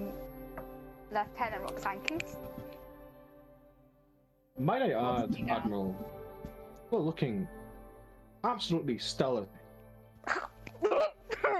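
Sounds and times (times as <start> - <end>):
speech: 1.2 - 2.6, 4.6 - 6.2, 6.9 - 7.6, 8.4 - 9.6, 10.2 - 11.1
harsh throaty coughs: 10.3 - 11.5.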